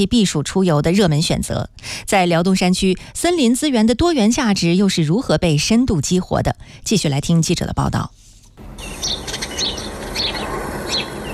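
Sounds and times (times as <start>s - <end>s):
speech: 0.0s - 8.2s
bird chirps in a forest valley: 8.7s - 11.3s.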